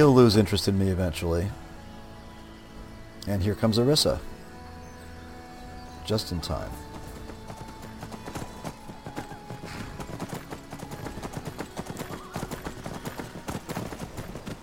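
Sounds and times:
speech: 0:00.0 - 0:01.6, 0:03.3 - 0:04.4, 0:06.1 - 0:06.9
horse galloping up a road: 0:06.4 - 0:14.6.

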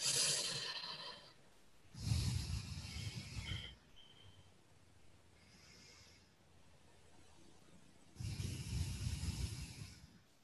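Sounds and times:
slow deep breathing during meditation: 0:00.0 - 0:04.6, 0:05.2 - 0:06.7, 0:08.2 - 0:10.4.

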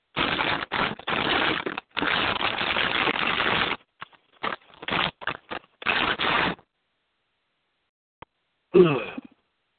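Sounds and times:
dog tearing plastic sheeting off an air conditioner: 0:00.1 - 0:06.6.

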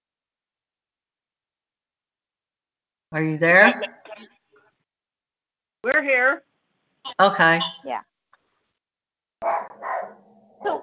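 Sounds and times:
speech: 0:03.1 - 0:04.3, 0:05.9 - 0:06.5, 0:07.1 - 0:08.1
dog barking: 0:09.4 - 0:10.8.

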